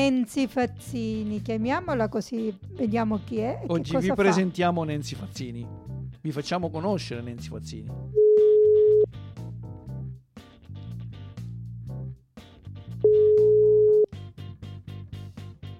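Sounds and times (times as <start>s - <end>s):
speech: 0.0s - 8.2s
bouncy music: 0.0s - 15.7s
phone ringback tone on an outgoing call: 8.2s - 9.1s, 13.0s - 14.1s.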